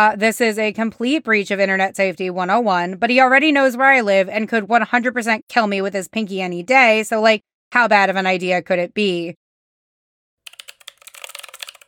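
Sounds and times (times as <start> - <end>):
speech: 0.0 - 9.4
typing on a computer keyboard: 10.5 - 11.8.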